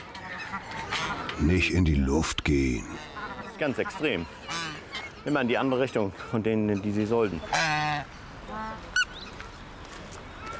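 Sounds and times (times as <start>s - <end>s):
geese honking: 0.0s - 5.8s, 6.7s - 9.1s
outdoor noise: 0.0s - 10.5s
speech: 0.5s - 4.6s, 5.2s - 7.8s.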